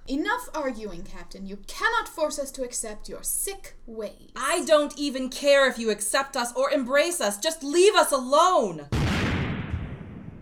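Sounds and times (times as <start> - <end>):
speech: 0.4 - 9.1
deep explosion outside: 8.9 - 10.4.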